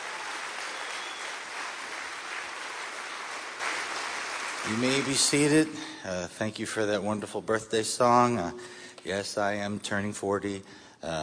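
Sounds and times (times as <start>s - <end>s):
audience at a Christian gathering clapping: 0.0s - 5.9s
speech: 4.6s - 11.2s.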